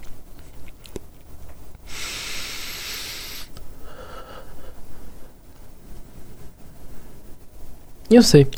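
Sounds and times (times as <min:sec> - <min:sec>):
deep breath taken as part of a breathing exercise: 0:01.8 - 0:05.4
quiet breathing: 0:01.8 - 0:07.8
speech: 0:08.1 - 0:08.5.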